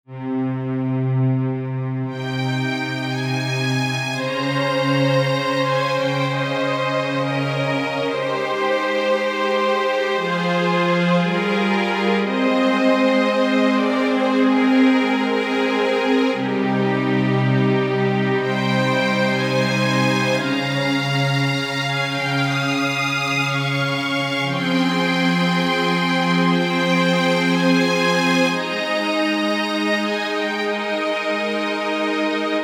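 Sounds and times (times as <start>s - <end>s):
strings playing in C at 118 BPM: 0.1s - 32.6s.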